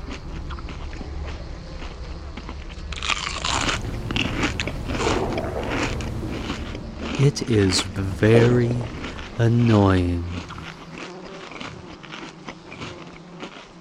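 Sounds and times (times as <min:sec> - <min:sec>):
low droning background: 0:00.0 - 0:11.0
loud wet open-mouthed chewing and crunching: 0:00.0 - 0:13.7
speech: 0:07.2 - 0:10.5.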